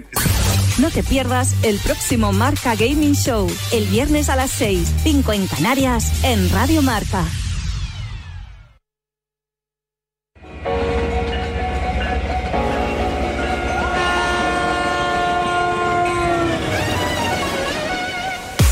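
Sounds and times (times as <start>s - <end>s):
speech: 0.0s - 7.5s
train horn as a train sets off: 10.8s - 18.6s.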